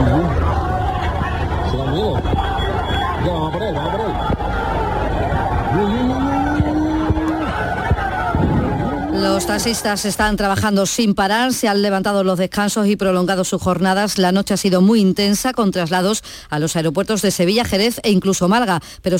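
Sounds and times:
crowd shouting and yelling in a street brawl in Seville: 0.0 - 10.4
speech: 9.5 - 19.1.

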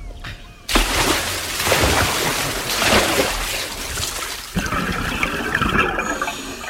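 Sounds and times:
heavy splash of a diver plunging into water: 0.7 - 4.6
rushing churning water: 0.7 - 6.0
water bubbling: 0.7 - 6.6.

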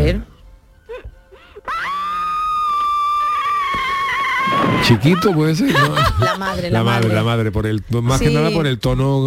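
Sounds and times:
speech: 0.1 - 0.3, 4.9 - 9.2
woman's long piercing scream from a horror film: 1.7 - 5.1
laughter: 4.6 - 7.3.

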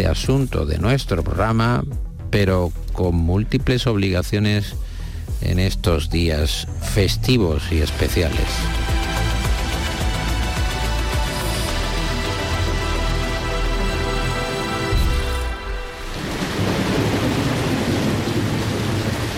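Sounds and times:
speech: 0.0 - 8.9
heavy rain pouring down in Málaga: 8.3 - 19.3.

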